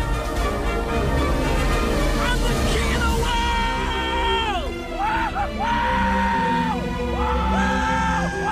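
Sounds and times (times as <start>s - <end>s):
steady orchestral music bed: 0.0s - 8.5s
people yelling and whooping: 3.2s - 8.5s.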